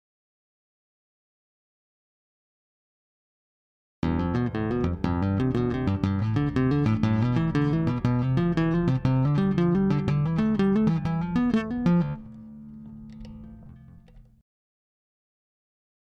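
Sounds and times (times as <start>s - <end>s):
bass guitar shredding: 4.0s - 14.4s.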